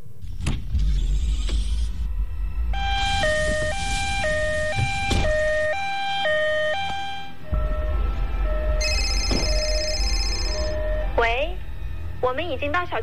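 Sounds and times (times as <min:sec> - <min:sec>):
low engine rumble: 0:00.0 - 0:13.0
loud two-tone ambulance siren: 0:01.9 - 0:13.0
softer sustained electronic tone: 0:02.7 - 0:12.2
speech: 0:12.5 - 0:13.0.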